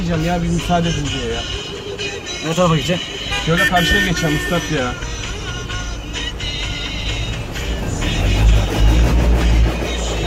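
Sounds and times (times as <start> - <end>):
speech: 0.0 - 1.7, 2.4 - 5.2
broad hiss of city road noise in Istanbul: 0.0 - 10.2
deep engine drone of vehicles moving past in Istanbul: 7.5 - 10.2.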